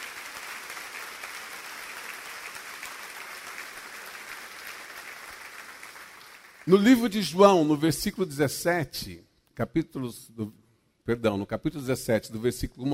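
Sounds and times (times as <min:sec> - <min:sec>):
audience applauding: 0:00.0 - 0:06.8
speech: 0:06.7 - 0:12.9.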